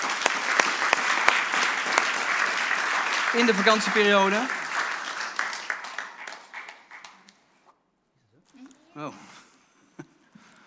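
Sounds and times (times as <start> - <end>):
audience applause: 0.0 - 7.5
speech: 3.3 - 4.6, 9.0 - 9.3.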